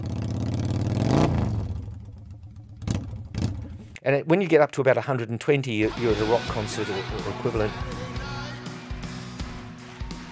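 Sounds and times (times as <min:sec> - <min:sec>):
motorcycle engine revving: 0:00.0 - 0:04.0
speech: 0:04.0 - 0:08.0.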